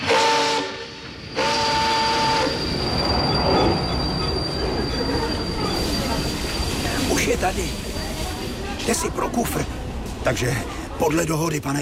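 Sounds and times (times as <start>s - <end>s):
metal train wheels squealing on rails: 1.0s - 8.7s
speech: 8.9s - 11.7s.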